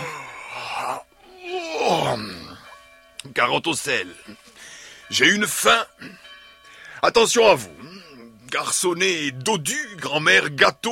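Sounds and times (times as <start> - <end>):
person imitating a wolf's yawn: 0.0 - 2.6
speech: 2.1 - 2.4, 3.3 - 4.5, 5.1 - 6.3, 7.0 - 7.9, 8.5 - 10.9.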